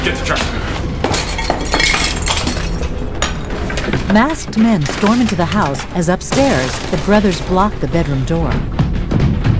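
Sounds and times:
speech: 0.0 - 0.7, 4.1 - 9.4
window glass breaking as a man crashes through it: 1.1 - 3.5, 4.8 - 7.7.

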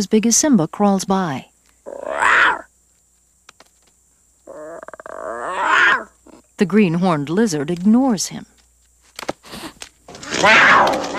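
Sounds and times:
speech: 0.0 - 2.6, 6.6 - 8.5, 10.4 - 11.0
lion cub letting out small raspy roars: 1.8 - 2.7, 4.4 - 6.4, 10.2 - 11.1.

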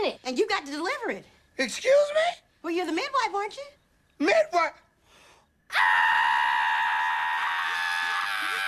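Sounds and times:
speech: 0.1 - 4.8, 5.7 - 6.6
woman screaming: 5.7 - 8.6.

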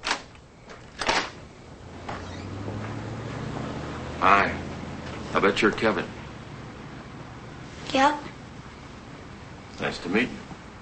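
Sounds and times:
door being opened with clicks and a clack: 0.0 - 1.4
steady low hum: 0.3 - 10.8
speech: 4.2 - 4.7, 5.4 - 6.2, 7.9 - 8.3, 9.8 - 10.5.

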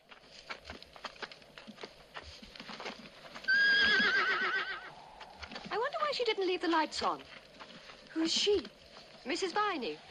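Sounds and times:
horse hooves clip-clopping: 0.0 - 10.0
horse neighing as it is pulled up: 3.5 - 5.0
speech: 6.2 - 7.4, 8.2 - 10.0.

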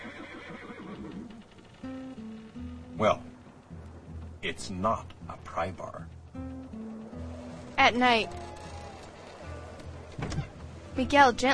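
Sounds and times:
horse neighing in a long wavering whinny: 0.0 - 2.5, 6.8 - 10.7
speech: 3.0 - 3.3, 4.4 - 6.5, 7.8 - 8.5, 11.0 - 11.5.

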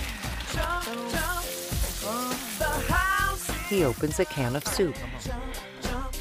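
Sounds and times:
pasta water from a boiling pot pouring through a strainer into a sink: 0.0 - 4.7
tonal music-like sounds: 0.0 - 6.1
speech: 0.5 - 1.3, 3.7 - 5.7.

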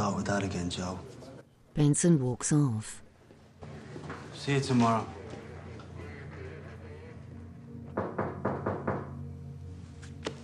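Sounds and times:
speech: 0.1 - 1.2, 1.8 - 3.0, 4.4 - 5.2
firm knocking on a door: 7.9 - 9.3.

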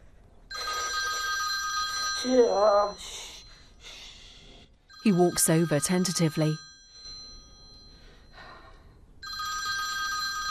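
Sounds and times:
mobile phone ringing: 0.5 - 2.9, 4.9 - 8.3, 9.2 - 10.4
speech: 2.2 - 3.2, 5.0 - 6.7.

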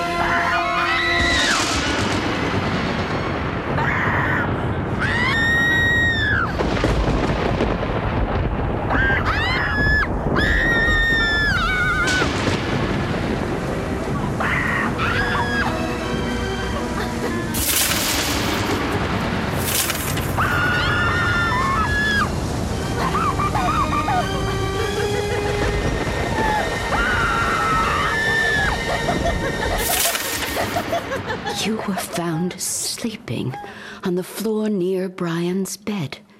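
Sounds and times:
constant rushing noisy wash: 0.0 - 31.7
two people screaming together under a bed: 0.1 - 1.7, 3.8 - 6.6, 8.9 - 12.3, 14.3 - 15.9, 20.4 - 22.3, 23.0 - 24.5, 26.2 - 29.1
laughter: 23.0 - 26.4, 28.5 - 32.7
speech: 34.2 - 36.2.

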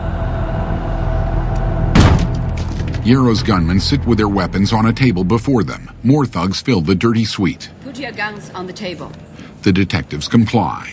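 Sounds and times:
steady low rumble: 0.0 - 8.4
room door kicked open with a heavy crash: 1.9 - 3.0
speech: 3.0 - 10.9.

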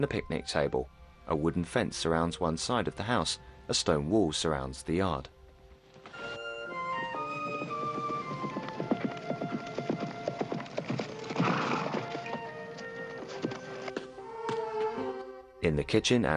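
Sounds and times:
speech: 0.0 - 5.4, 15.7 - 16.3
horse hooves clopping in a quick uneven patter: 5.9 - 15.1.

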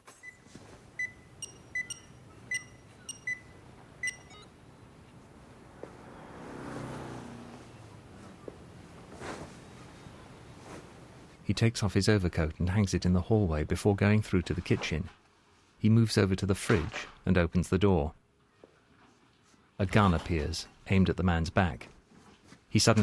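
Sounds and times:
burglar alarm keypad beeps as the alarm is switched off: 1.0 - 4.5
speech: 11.5 - 15.2, 15.8 - 18.2, 19.8 - 21.9, 22.7 - 23.0.

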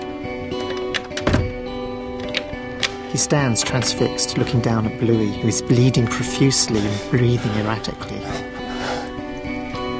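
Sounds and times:
sustained tonal background: 0.0 - 9.9
cabin door being locked: 0.5 - 3.0
speech: 3.2 - 8.5.

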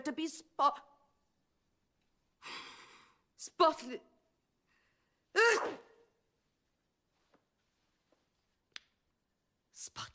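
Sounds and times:
speech: 0.0 - 0.9, 2.4 - 2.7, 3.4 - 4.1, 5.4 - 5.8, 9.8 - 10.1
loud sneeze: 5.3 - 6.1.

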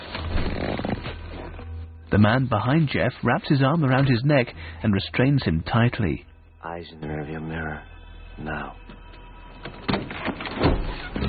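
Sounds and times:
speech: 2.1 - 9.0
van doors opening: 8.9 - 11.2.

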